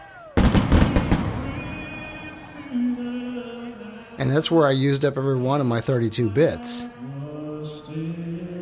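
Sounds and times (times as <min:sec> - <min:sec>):
crowd roar at a concert: 0:00.0 - 0:02.7
pyrotechnic blasts at a concert: 0:00.3 - 0:02.8
speech: 0:04.2 - 0:07.0.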